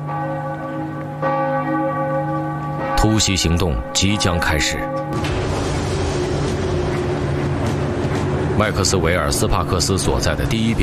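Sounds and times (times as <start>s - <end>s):
cathedral bells striking noon: 0.0s - 10.8s
speech: 3.0s - 5.6s, 8.6s - 10.8s.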